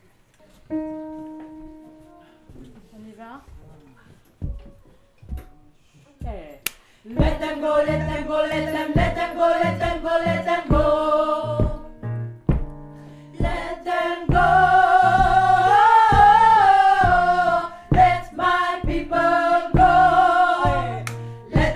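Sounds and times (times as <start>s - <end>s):
alto voice part singing gospel: 7.0s - 12.2s, 13.0s - 21.7s.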